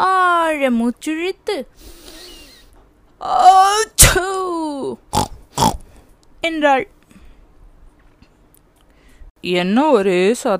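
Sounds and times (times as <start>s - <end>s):
speech: 0.6s - 2.0s, 3.2s - 5.3s, 6.4s - 7.0s, 9.4s - 10.5s
voice imitating a sneeze: 3.8s - 4.4s.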